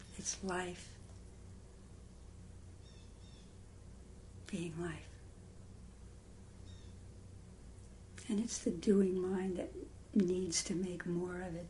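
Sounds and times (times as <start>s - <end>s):
steady low hum: 0.0s - 11.6s
speech: 0.2s - 1.0s, 4.5s - 5.1s, 8.3s - 11.6s
faint bird chirps: 2.8s - 3.6s, 6.6s - 7.1s.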